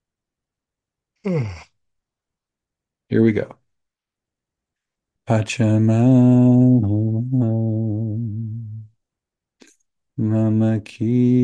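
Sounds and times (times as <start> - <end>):
breathy yawn: 1.2 - 1.7
speech: 1.2 - 1.7, 3.1 - 3.6, 5.3 - 8.0, 10.2 - 11.4.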